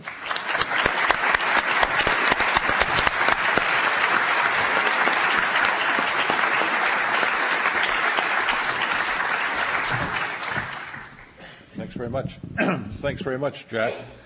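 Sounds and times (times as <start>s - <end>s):
sustained applause from a sizable audience welcoming a professor: 0.0s - 11.4s
speech: 12.1s - 14.2s.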